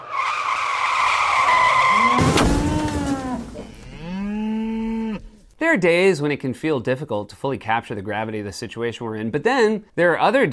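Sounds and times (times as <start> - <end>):
long loud car tire screech: 0.0 - 3.4
abrupt car crash: 0.7 - 4.1
drawn-out cow-like mooing: 1.9 - 5.4
speech: 5.7 - 10.5.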